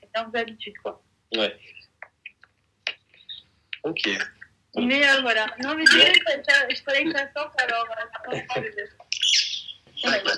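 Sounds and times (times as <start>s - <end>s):
speech: 0.2s - 1.8s, 3.8s - 9.0s, 10.0s - 10.3s
birds chirping outdoors in the countryside: 3.0s - 4.6s, 5.6s - 6.4s, 7.6s - 10.3s.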